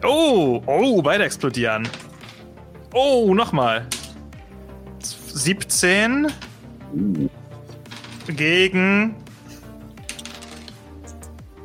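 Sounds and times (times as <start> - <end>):
speech: 0.0 - 2.1, 2.9 - 4.0, 5.4 - 7.4, 8.3 - 9.2
dice rolling in a dice-based tabletop-style game: 1.8 - 2.4, 7.7 - 8.5, 10.0 - 11.4.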